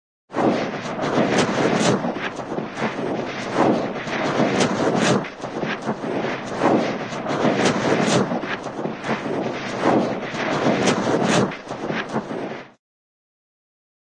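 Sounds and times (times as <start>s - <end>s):
cartoon giant snowball rolling: 0.4s - 12.7s.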